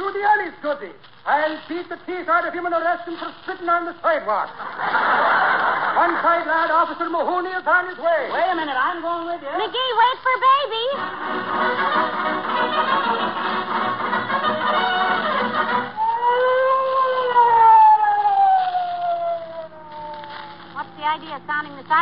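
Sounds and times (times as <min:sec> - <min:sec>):
dense noisy background: 0:00.0 - 0:21.9
speech: 0:00.5 - 0:13.5, 0:21.1 - 0:21.9
laughter: 0:04.5 - 0:06.8, 0:11.0 - 0:15.9
police car siren wailing: 0:14.4 - 0:21.9.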